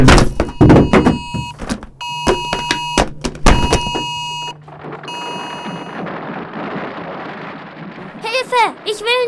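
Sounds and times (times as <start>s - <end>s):
loud electronic alarm: 0.0s - 6.7s
boxes crashing: 0.0s - 9.2s
earthquake rumble: 3.5s - 9.2s.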